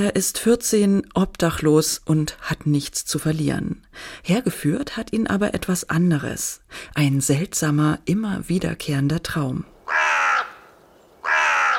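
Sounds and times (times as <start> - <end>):
speech: 0.0 - 9.7
raven cawing: 9.8 - 11.7.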